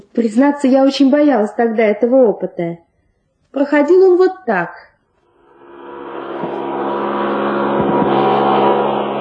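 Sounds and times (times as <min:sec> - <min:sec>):
speech: 0:00.2 - 0:02.8, 0:03.5 - 0:04.9
human centrifuge with steel beam and cosmonaut cabin spinning up: 0:05.3 - 0:09.1.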